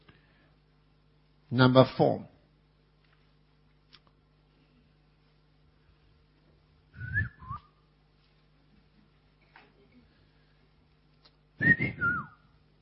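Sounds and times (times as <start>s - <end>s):
speech: 1.5s - 2.3s
person whistling calling notes: 7.0s - 7.8s, 11.6s - 12.5s.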